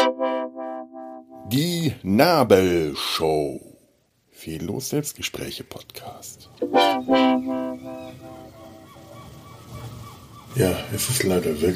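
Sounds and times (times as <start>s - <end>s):
speech: 1.5s - 3.7s, 4.4s - 8.0s, 10.6s - 11.7s
seagulls screeching: 6.8s - 10.9s.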